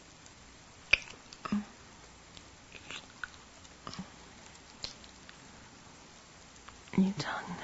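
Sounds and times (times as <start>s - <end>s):
wet lip smacks of a slow sensual kiss: 0.9s - 1.4s, 4.8s - 5.2s
speech: 7.0s - 7.5s.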